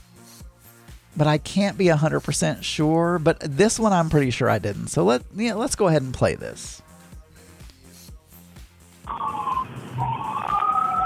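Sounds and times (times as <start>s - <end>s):
steady rhythmic low thumps: 0.0s - 9.9s
speech: 1.2s - 6.8s
ambulance siren wailing: 9.1s - 11.0s.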